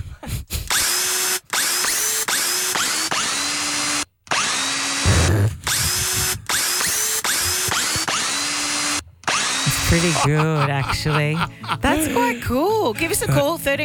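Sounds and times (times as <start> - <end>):
power drill whirring a tune: 0.7 - 10.4
laughter: 5.1 - 8.2, 9.6 - 13.6
speech: 9.9 - 13.8.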